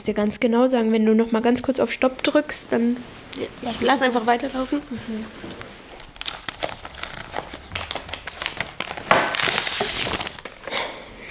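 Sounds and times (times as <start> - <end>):
speech: 0.0 - 5.6
paper hospital patient file rustling and crinkling: 3.4 - 10.8.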